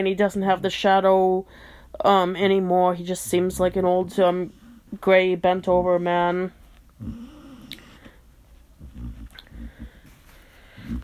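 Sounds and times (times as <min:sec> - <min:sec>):
speech: 0:00.0 - 0:07.3
dog dreaming in its sleep huffing and whimpering: 0:07.0 - 0:08.2, 0:08.8 - 0:10.1.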